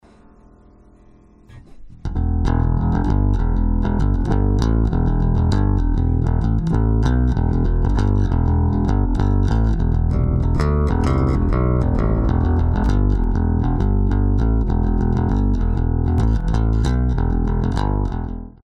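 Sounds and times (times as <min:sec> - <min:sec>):
compressed bassline: 0:02.0 - 0:18.6.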